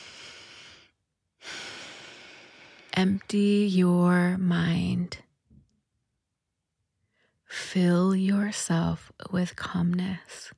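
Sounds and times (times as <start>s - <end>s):
deep breath taken during a relaxation exercise: 0.0s - 3.0s
speech: 3.0s - 5.2s, 7.6s - 10.5s.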